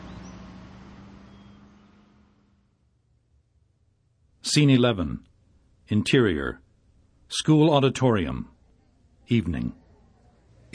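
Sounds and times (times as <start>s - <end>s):
truck driving off: 0.0s - 2.9s
truck engine rumbling: 0.0s - 4.5s
speech: 4.5s - 5.3s, 5.9s - 6.6s, 7.3s - 8.5s, 9.3s - 9.8s.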